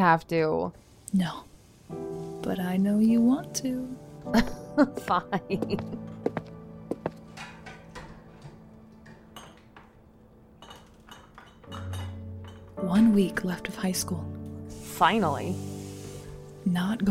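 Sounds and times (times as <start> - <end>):
speech: 0.0 - 6.2, 12.8 - 14.4, 15.0 - 15.7, 16.6 - 17.0
dishes and cutlery clinking as dishes are washed: 7.0 - 12.9.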